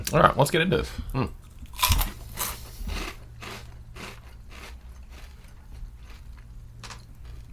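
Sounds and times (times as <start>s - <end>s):
speech: 0.0s - 2.0s
crunching potato chips: 1.5s - 7.5s.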